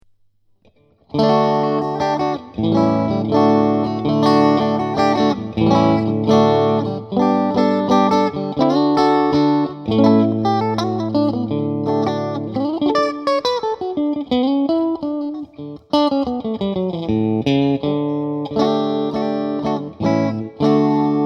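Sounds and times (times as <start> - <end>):
guitar whammy bar twang on middle bridge: 0.0 - 21.2.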